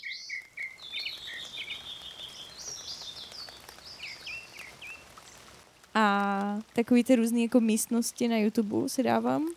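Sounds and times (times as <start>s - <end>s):
birds singing in bright rapid whistled phrases: 0.0s - 5.1s
steady soft patter of rain: 0.0s - 9.5s
speech: 6.0s - 9.5s.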